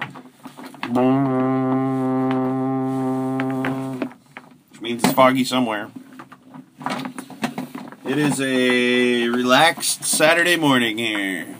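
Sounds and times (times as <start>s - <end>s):
speech: 0.9s - 1.4s, 4.9s - 6.0s, 8.1s - 11.5s
deep droning foghorn blast: 0.9s - 4.1s.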